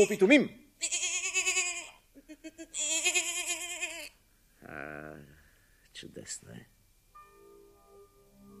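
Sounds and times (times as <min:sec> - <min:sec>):
speech: 0:00.0 - 0:01.0, 0:04.7 - 0:05.4, 0:06.0 - 0:06.8
young goat bleating: 0:00.8 - 0:04.2.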